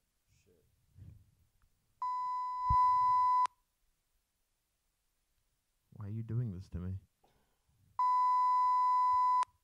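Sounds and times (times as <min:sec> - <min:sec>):
censor bleep tone over a spoken swear word: 0:02.0 - 0:03.5, 0:08.0 - 0:09.5
speech: 0:06.3 - 0:07.1.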